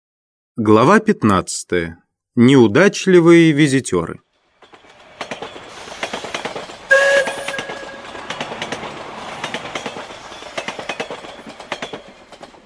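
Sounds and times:
speech: 0:00.6 - 0:04.2
passenger train wheels clattering pulling into Moscow: 0:04.4 - 0:12.6
passenger train horn blast: 0:06.9 - 0:08.4.

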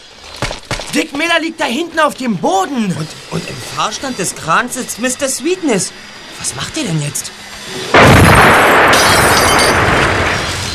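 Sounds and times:
speech: 0:00.9 - 0:09.3
bomb exploding on a Mustang car: 0:07.9 - 0:10.7.

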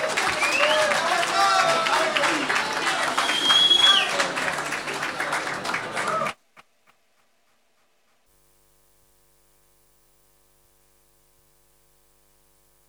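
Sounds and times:
audience applauding: 0:00.0 - 0:06.4
crowd noise: 0:00.0 - 0:06.4
whistle: 0:00.3 - 0:01.0, 0:03.0 - 0:04.2.

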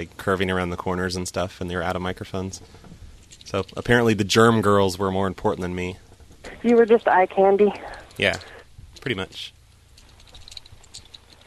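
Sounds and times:
speech: 0:00.0 - 0:02.9, 0:03.5 - 0:06.0, 0:06.6 - 0:09.6
low hum: 0:00.0 - 0:11.4
fingers typing on a computer keyboard: 0:10.2 - 0:11.4.

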